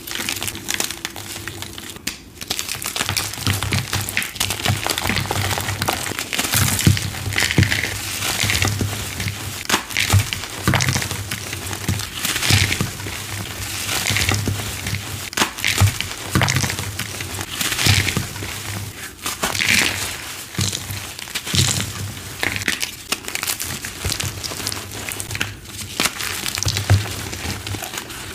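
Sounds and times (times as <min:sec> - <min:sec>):
gym chalk crunching: 0:00.0 - 0:28.3.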